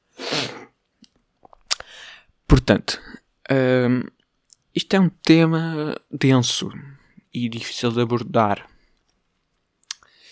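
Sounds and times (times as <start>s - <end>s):
sniffing through a congested nose: 0.1s - 0.7s
speech: 2.5s - 4.2s, 4.8s - 8.7s.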